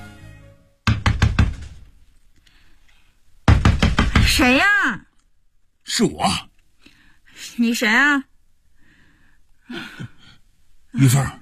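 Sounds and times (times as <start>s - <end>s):
loud hollow knocking on a house door: 0.8s - 1.9s, 3.4s - 4.5s
speech: 4.4s - 4.8s, 6.0s - 6.5s, 7.6s - 8.3s, 11.0s - 11.3s.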